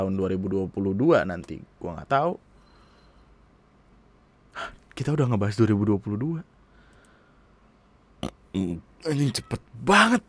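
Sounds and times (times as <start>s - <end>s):
speech: 0.0s - 2.5s, 4.6s - 6.5s, 8.2s - 10.2s
person burping after drinking coffee: 8.2s - 8.4s.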